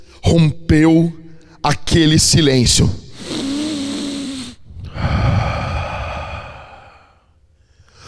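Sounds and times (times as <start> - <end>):
speech: 0.3 - 3.0
deep raspy gasping breath: 3.1 - 8.0.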